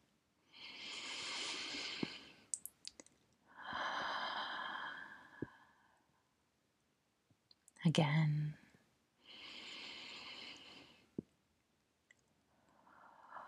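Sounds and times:
deep breaths in and out during breathing practice: 0:00.4 - 0:02.5, 0:03.5 - 0:06.2, 0:09.2 - 0:11.2, 0:12.5 - 0:13.4
mouth clicks: 0:01.9 - 0:03.1
speech: 0:07.9 - 0:08.6.

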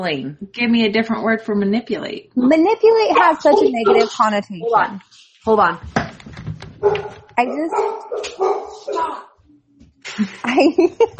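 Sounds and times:
speech: 0:00.0 - 0:06.1, 0:06.8 - 0:09.3, 0:10.0 - 0:11.1
several dogs barking and yipping: 0:03.1 - 0:04.9, 0:06.8 - 0:09.2
laughter: 0:10.0 - 0:11.1.

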